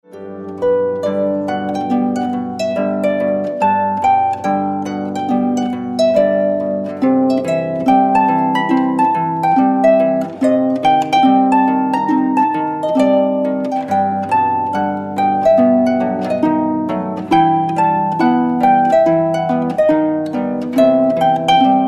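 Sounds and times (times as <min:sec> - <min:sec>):
harp music for Advent: 0:00.0 - 0:21.8.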